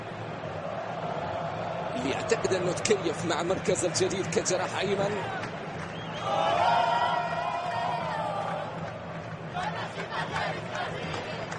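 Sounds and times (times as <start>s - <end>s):
large crowd of football fans at a stadium roaring and chanting: 0.0s - 5.5s, 6.2s - 11.5s
crowd of football fans clapping: 0.6s - 11.5s
speech: 2.0s - 5.5s
crowd of football fans singing: 9.5s - 11.5s.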